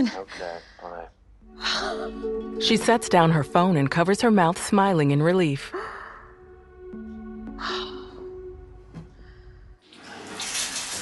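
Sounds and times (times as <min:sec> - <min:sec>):
speech: 0:00.0 - 0:05.9, 0:07.6 - 0:07.9
water running from a shower head: 0:09.8 - 0:11.0.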